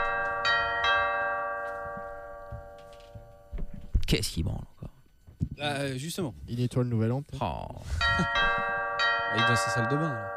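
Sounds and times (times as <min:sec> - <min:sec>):
doorbell ringing as a sustained multi-tone chime: 0:00.0 - 0:03.6, 0:08.0 - 0:10.3
speech: 0:04.1 - 0:04.8, 0:05.6 - 0:08.6, 0:09.3 - 0:10.3.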